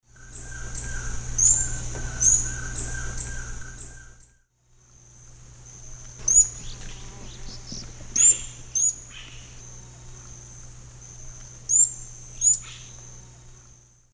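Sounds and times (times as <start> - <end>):
Picumnus lafresnayi calls in the Eastern Lowlands of South America: 0.1 - 4.4, 6.2 - 9.6.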